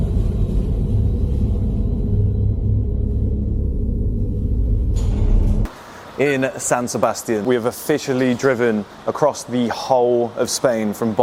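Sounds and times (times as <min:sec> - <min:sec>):
steady enveloping low rumble in an underground car park: 0:00.0 - 0:05.7
speech: 0:06.2 - 0:11.2.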